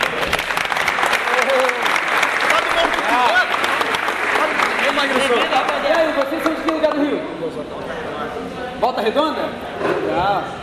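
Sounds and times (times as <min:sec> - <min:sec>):
people cheering: 0:00.0 - 0:06.9
dense audience clapping from a crowd: 0:00.0 - 0:07.2
speech: 0:08.9 - 0:10.6.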